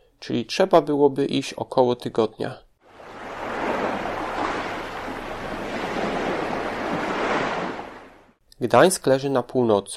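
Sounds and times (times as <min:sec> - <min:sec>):
speech: 0:00.2 - 0:02.7, 0:08.6 - 0:09.9
Baltic Sea waves breaking on the shore: 0:02.8 - 0:08.4.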